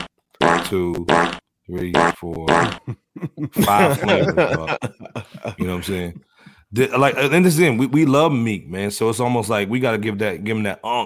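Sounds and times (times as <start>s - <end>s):
loud buzzy reedy fart sound effects: 0.0s - 2.9s
speech: 0.7s - 11.0s
laughter: 2.8s - 8.0s.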